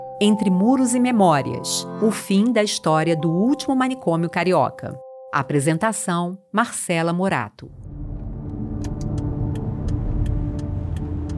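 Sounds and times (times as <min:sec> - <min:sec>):
speech: 0:00.2 - 0:07.8
car engine rumbling heard from inside the vehicle: 0:07.6 - 0:11.3.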